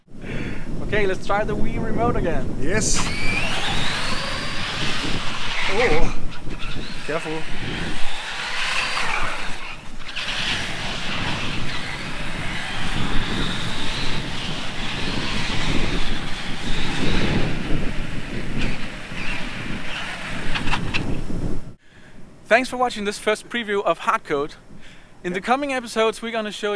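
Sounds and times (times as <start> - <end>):
speech: 0.9 - 3.4, 5.7 - 6.2, 7.1 - 8.1, 22.5 - 26.7
remote-controlled car motor whining: 2.8 - 21.3.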